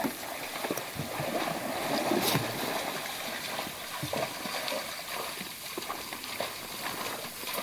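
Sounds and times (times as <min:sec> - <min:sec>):
mother moose and calves wading through shallow grassy water: 0:00.0 - 0:07.6
steady outdoor hiss: 0:00.0 - 0:07.6.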